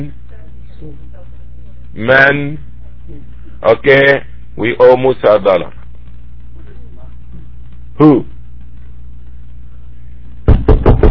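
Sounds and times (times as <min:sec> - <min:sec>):
speech: 0:00.0 - 0:00.2, 0:00.8 - 0:01.1, 0:01.9 - 0:05.8, 0:08.0 - 0:08.3
low hum: 0:00.0 - 0:11.1
firm knocks on a wooden door: 0:10.5 - 0:11.1.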